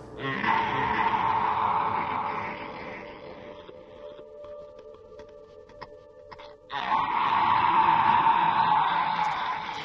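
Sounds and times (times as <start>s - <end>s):
raw inhuman animal-like wailing scream: 0.2s - 3.5s, 6.7s - 9.8s.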